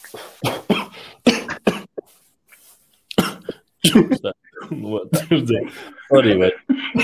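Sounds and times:
throat sounds: 0:00.0 - 0:02.2, 0:03.1 - 0:05.4
person coughing: 0:00.4 - 0:02.1, 0:03.1 - 0:04.3.

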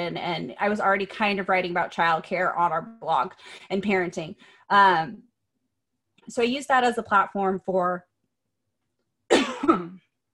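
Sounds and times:
speech: 0:00.0 - 0:05.3, 0:06.3 - 0:08.1
person coughing from a tickle in the throat: 0:09.3 - 0:10.1.

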